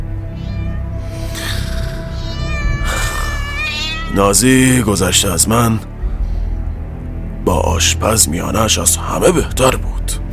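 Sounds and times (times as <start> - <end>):
cat meowing in long drawn-out wails: 0.2 - 4.4
speech: 4.2 - 5.9, 7.5 - 10.2.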